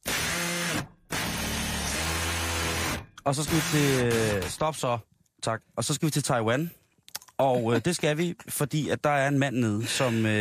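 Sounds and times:
electric power drill whirring: 0:00.0 - 0:04.6
speech: 0:03.2 - 0:06.8, 0:07.4 - 0:10.4.

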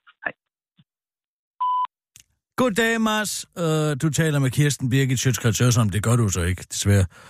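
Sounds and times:
short electronic voicemail beep: 0:01.6 - 0:01.9
speech: 0:02.6 - 0:07.2.

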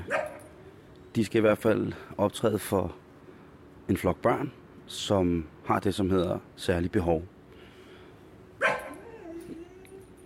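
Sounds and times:
speech: 0:01.2 - 0:03.0, 0:03.9 - 0:07.4
small dog left behind yipping and whining: 0:08.6 - 0:10.2.

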